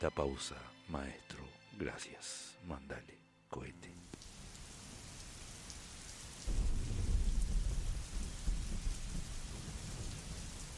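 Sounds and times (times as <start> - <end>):
speech: 0.0 - 4.2
rain hissing: 4.0 - 10.7
thunder rumbling: 6.4 - 10.7.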